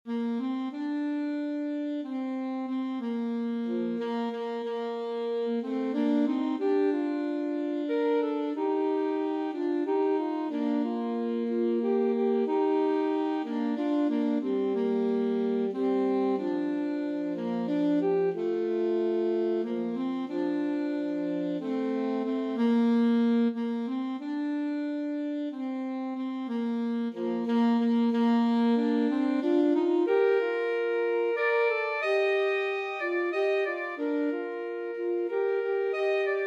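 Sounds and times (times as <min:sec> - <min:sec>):
alto saxophone duet playing a folk song: 0:00.1 - 0:36.4.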